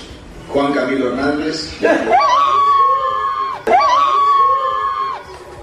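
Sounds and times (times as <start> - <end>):
speech: 0.5 - 2.5
woman screaming with excitement: 2.1 - 5.3.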